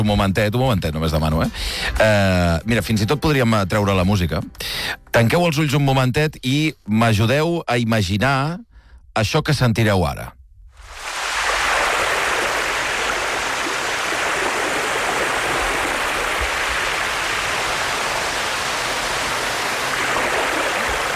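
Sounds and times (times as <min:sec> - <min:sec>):
speech: 0:00.0 - 0:10.4
loud wash of beach surf: 0:10.8 - 0:21.1.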